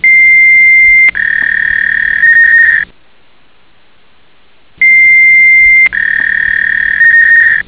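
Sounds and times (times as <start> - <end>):
computers: 0.0 - 2.9, 4.8 - 7.6
modem: 0.0 - 2.9, 4.8 - 7.6.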